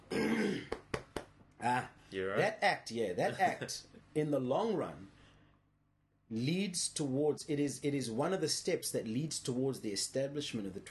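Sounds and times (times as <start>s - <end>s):
person clearing throat: 0.0s - 0.8s
speech: 1.6s - 5.2s, 6.3s - 10.8s.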